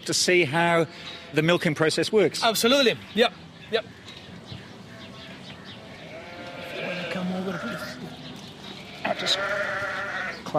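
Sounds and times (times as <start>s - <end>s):
speech: 0.0s - 4.0s, 9.3s - 9.7s
sheep bleating in a farmyard on a dairy sheep farm: 6.0s - 8.1s, 8.7s - 10.5s.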